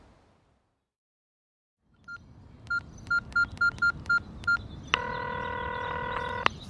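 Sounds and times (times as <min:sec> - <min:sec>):
cell phone keypad tones as a number is dialed: 0:02.1 - 0:06.5
long steady phone ringing tone: 0:05.0 - 0:06.5.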